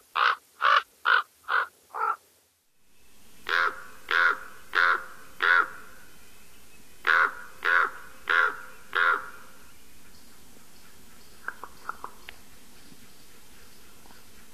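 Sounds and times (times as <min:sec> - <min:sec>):
common raven giving hoarse croaks: 0:00.1 - 0:02.2, 0:03.4 - 0:06.0, 0:07.0 - 0:09.6.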